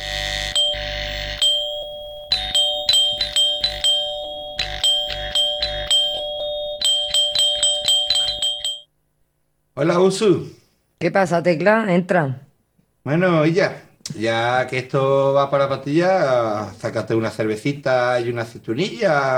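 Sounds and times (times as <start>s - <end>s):
doorbell chiming ding-dong: 0.5s - 8.9s
speech: 9.8s - 12.4s, 13.0s - 19.3s.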